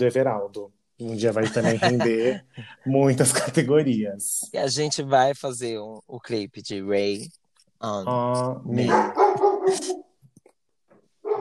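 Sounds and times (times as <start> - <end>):
speech: 0.0 - 10.0
laughter: 1.4 - 2.5
pet dog barking excitedly: 8.8 - 10.1.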